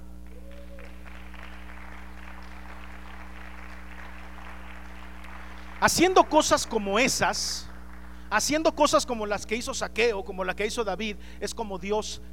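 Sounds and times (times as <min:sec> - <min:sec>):
low constant hum: 0:00.0 - 0:12.3
crowd applauding: 0:00.2 - 0:08.3
speech: 0:05.8 - 0:07.7, 0:08.3 - 0:12.3.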